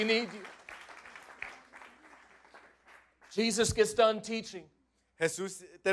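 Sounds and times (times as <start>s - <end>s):
speech: 0.0s - 0.5s, 3.4s - 5.9s
crowd clapping: 0.0s - 3.9s.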